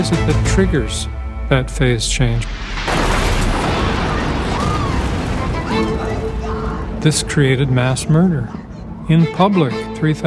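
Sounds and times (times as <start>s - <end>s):
speech: 0.0s - 2.9s, 7.0s - 10.2s
huge explosion's heavy roaring rumble in archival news footage: 0.4s - 7.9s.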